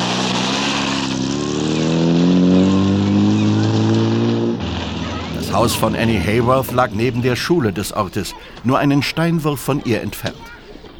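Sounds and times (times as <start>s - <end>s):
car engine revving and driving off: 0.0s - 8.6s
speech: 5.6s - 10.5s.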